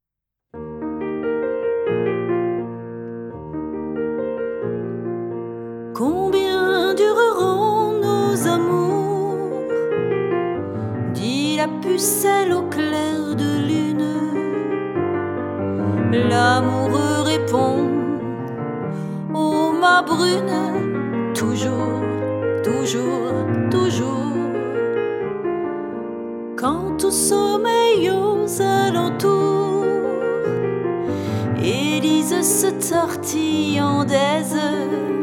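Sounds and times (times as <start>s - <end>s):
piano: 0.0s - 35.2s
person singing a chanson: 6.0s - 9.9s, 11.0s - 14.7s, 15.8s - 18.5s, 19.1s - 25.0s, 26.6s - 35.2s.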